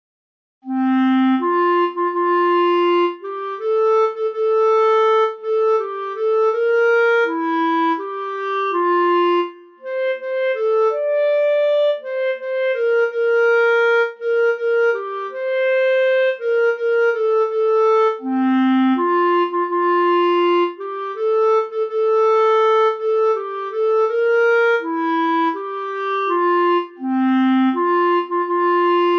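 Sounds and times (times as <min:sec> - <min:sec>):
solo bass clarinet: 0:00.6 - 0:29.1.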